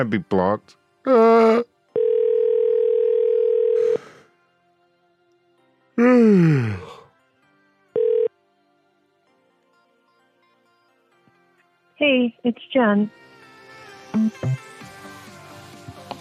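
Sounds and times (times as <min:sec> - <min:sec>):
speech: 0:00.0 - 0:01.7, 0:06.0 - 0:06.8, 0:12.0 - 0:13.2, 0:14.1 - 0:14.7
person letting out a loud groan-like sigh: 0:01.1 - 0:01.6, 0:03.8 - 0:04.2, 0:06.0 - 0:07.1
steady electronic telephone tone: 0:02.0 - 0:04.0, 0:08.0 - 0:08.3.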